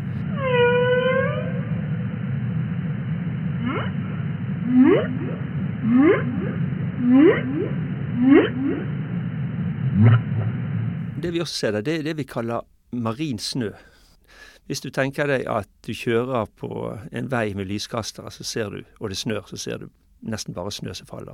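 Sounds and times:
steady low underwater rumble: 0.0s - 11.3s
underwater whale upsweeping moans: 0.2s - 1.8s, 3.6s - 4.0s, 4.6s - 9.0s, 9.9s - 10.4s
underwater whale whistles: 0.3s - 1.8s, 3.6s - 4.0s, 4.7s - 8.9s
speech: 11.3s - 21.3s.

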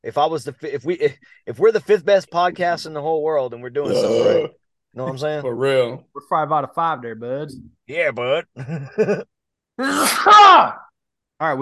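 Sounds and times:
speech: 0.0s - 10.8s, 11.4s - 11.6s
person sneezing: 9.8s - 10.7s.

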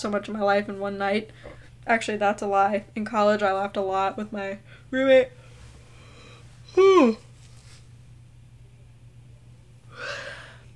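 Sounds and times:
speech: 0.0s - 5.4s, 6.7s - 7.3s
low steady hum: 0.0s - 10.7s
person yawning with falling pitch: 6.7s - 7.2s
soft breathy exhale: 9.9s - 10.7s.

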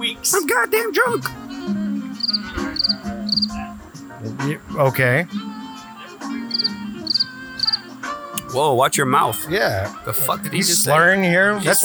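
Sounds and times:
crickets chirping: 0.0s - 4.1s, 4.7s - 8.8s
speech: 0.2s - 3.0s, 4.4s - 5.4s, 8.5s - 11.8s.

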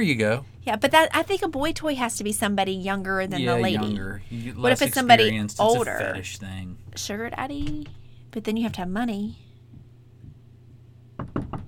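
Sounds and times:
speech: 0.0s - 9.4s
low hum: 0.0s - 11.6s
knocking on a door: 11.2s - 11.6s.

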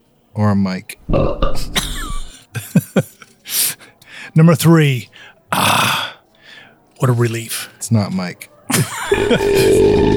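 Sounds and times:
speech: 0.4s - 1.9s, 4.4s - 6.0s, 7.0s - 10.1s
loud throaty belch: 1.1s - 2.3s, 9.1s - 10.1s
laughter: 1.7s - 4.1s, 8.6s - 10.1s.

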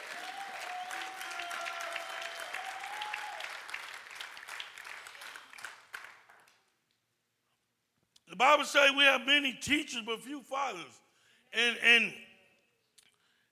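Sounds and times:
church audience clapping: 0.0s - 7.0s
speech: 8.4s - 11.0s, 11.6s - 12.3s.

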